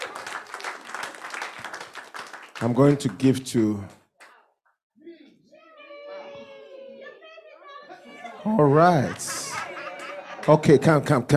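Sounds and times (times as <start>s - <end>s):
group of people clapping together: 0.0s - 4.6s, 8.4s - 11.3s
speech: 2.6s - 4.0s, 8.5s - 9.4s, 10.4s - 11.3s
laughter: 6.6s - 11.3s.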